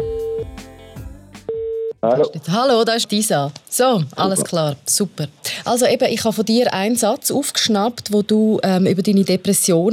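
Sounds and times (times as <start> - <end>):
steady electronic ringback tone of a mobile phone call: 1.5 - 2.0
speech: 2.0 - 9.9.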